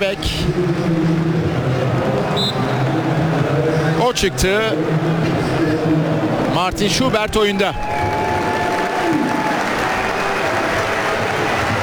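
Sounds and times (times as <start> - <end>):
speech: 0.0 - 1.7, 4.1 - 8.1
large stadium crowd clapping and cheering for a substituted player: 0.0 - 11.8
faint tonal whistles or horns: 2.4 - 2.8.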